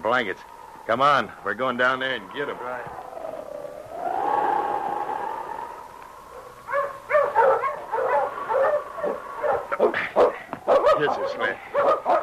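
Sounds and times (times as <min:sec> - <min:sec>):
speech: 0:00.0 - 0:03.0, 0:11.0 - 0:11.7
hound howling by a sled: 0:00.0 - 0:09.7
hound barking and yipping by a sled: 0:06.4 - 0:12.2.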